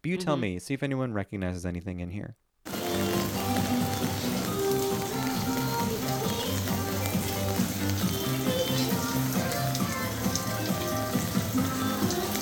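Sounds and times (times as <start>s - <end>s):
speech: 0.0s - 2.8s
steady dense rain pelting down: 2.7s - 12.4s.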